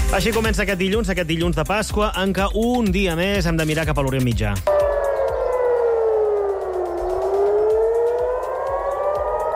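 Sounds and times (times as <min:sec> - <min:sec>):
speech: 0:00.1 - 0:04.9
air raid sirens in Tel Aviv wailing during Iranian attacks: 0:04.7 - 0:09.5.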